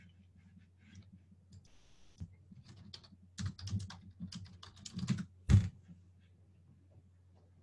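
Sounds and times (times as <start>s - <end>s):
typing a search on a computer keyboard: 1.7s - 5.6s.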